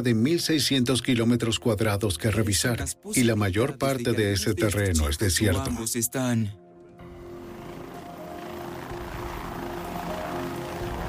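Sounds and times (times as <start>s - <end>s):
speech: 0.0s - 6.6s
helicopter rotor and engine roar overhead: 7.0s - 11.0s.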